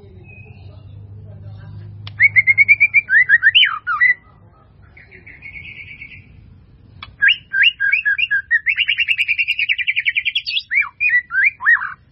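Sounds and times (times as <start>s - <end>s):
White-rumped Shama singing whistled notes: 0.0s - 1.0s, 2.1s - 4.2s, 5.0s - 6.4s, 7.0s - 12.0s.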